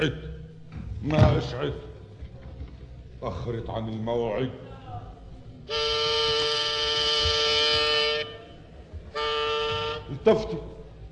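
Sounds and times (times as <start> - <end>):
speech: 0.0 - 0.3, 1.0 - 1.9, 3.2 - 4.7, 5.7 - 6.0, 10.1 - 10.8
car horn honking: 5.6 - 10.8.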